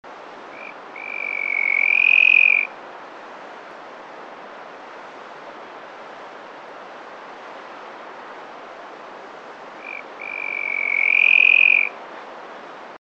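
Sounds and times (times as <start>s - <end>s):
Grallaria andicola antpitta calling: 0.5s - 2.7s, 9.8s - 11.9s.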